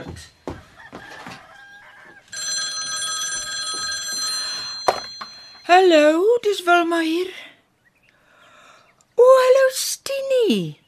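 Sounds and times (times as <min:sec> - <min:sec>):
speech: 0:00.2 - 0:00.4, 0:05.7 - 0:07.4, 0:09.4 - 0:10.8
telephone bell ringing with a bright metallic jangle: 0:02.3 - 0:06.2.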